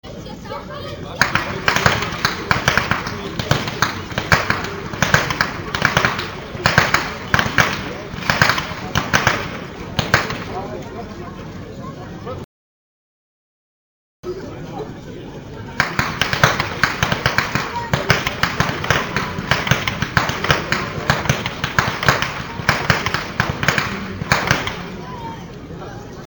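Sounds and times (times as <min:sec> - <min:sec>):
whip cracking by youths: 0:01.2 - 0:10.8, 0:15.8 - 0:25.1.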